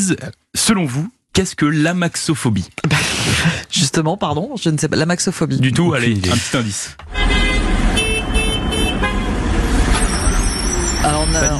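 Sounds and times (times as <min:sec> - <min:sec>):
speech: 0:00.0 - 0:07.5, 0:11.1 - 0:11.5
laughter: 0:02.8 - 0:03.7
loud busy road traffic with steady engine rumble: 0:07.0 - 0:11.5
several car horns honking in short overlapping blasts: 0:07.0 - 0:11.5.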